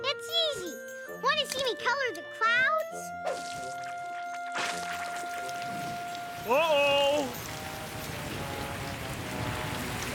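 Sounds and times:
speech: 0:00.1 - 0:04.0, 0:06.4 - 0:07.4
steady rain pouring down: 0:05.4 - 0:10.1.

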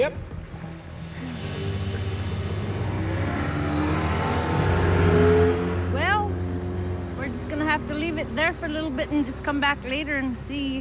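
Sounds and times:
speech: 0:00.0 - 0:00.2, 0:07.8 - 0:10.7
boat motor revving while the boat is parked: 0:01.4 - 0:10.7.

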